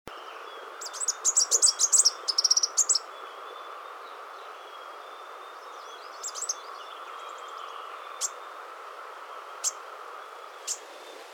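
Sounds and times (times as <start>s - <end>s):
green-throated sunbird high thin chirps and short trills: 0.2s - 8.6s, 9.3s - 11.3s.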